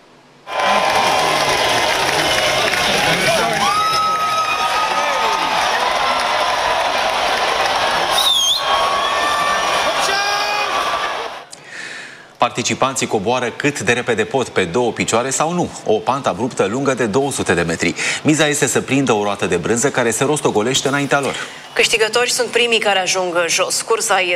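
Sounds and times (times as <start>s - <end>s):
large crowd cheering and shouting at a cheese-rolling race start in an English village: 0.4s - 11.5s
scattered whoops: 0.5s - 11.4s
sharp whistles: 8.1s - 9.3s
speech: 12.4s - 24.3s.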